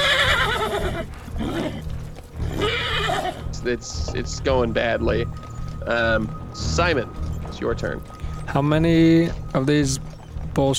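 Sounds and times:
agitated horses whinnying and neighing: 0.0 - 10.7
steady low rumble: 0.0 - 10.7
speech: 3.6 - 10.7.

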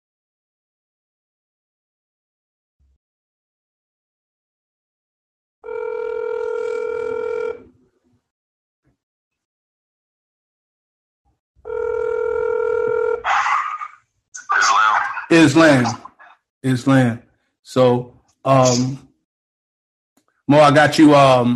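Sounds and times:
phone line ringing: 5.6 - 7.7, 11.7 - 13.2
speech over phone line: 14.4 - 16.3
speech: 15.4 - 16.0, 16.6 - 19.1, 20.5 - 21.5.

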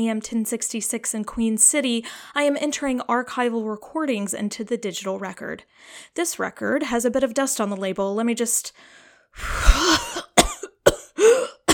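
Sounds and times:
speech: 0.0 - 10.0
person coughing from dust in the throat: 9.5 - 11.7.

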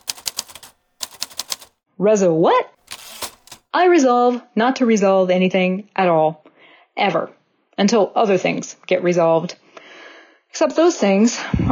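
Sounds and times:
vintage typewriter typing a custom poem: 0.0 - 1.7, 2.8 - 3.6
speech: 2.0 - 2.8, 3.7 - 6.4, 7.0 - 9.6, 10.6 - 11.7.

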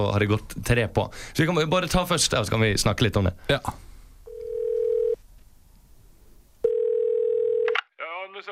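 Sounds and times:
speech: 0.0 - 3.8
telephone ringback tone of an outgoing call: 4.3 - 5.2, 6.6 - 7.8.

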